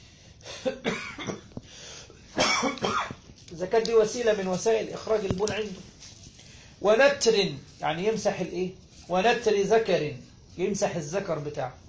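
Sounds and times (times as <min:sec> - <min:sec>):
speech: 0:00.6 - 0:01.3, 0:03.6 - 0:05.9, 0:06.8 - 0:11.8
person clearing throat: 0:00.6 - 0:01.5, 0:02.3 - 0:03.2.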